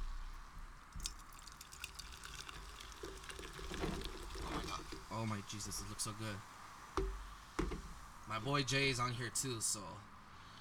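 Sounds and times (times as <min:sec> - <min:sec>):
fizzy crackling bubbles of a drink: 0:00.8 - 0:08.4
drink pouring into a cup: 0:01.0 - 0:06.0
speech: 0:05.2 - 0:06.6, 0:08.3 - 0:10.2.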